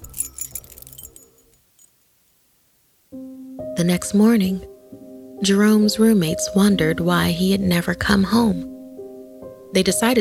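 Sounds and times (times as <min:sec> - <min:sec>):
keys jangling: 0:00.0 - 0:02.0
speech: 0:03.8 - 0:04.7, 0:05.4 - 0:08.7, 0:09.7 - 0:10.1.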